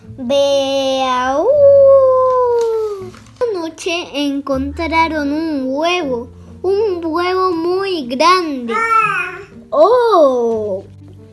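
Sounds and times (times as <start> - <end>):
speech: 0.2 - 1.4, 3.8 - 10.9
human voice imitating a wolf howling at the moon: 1.5 - 2.9.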